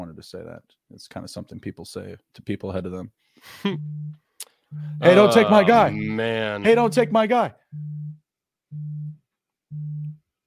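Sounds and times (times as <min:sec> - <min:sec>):
speech: 0:00.1 - 0:08.0
phone vibrating: 0:03.8 - 0:10.3.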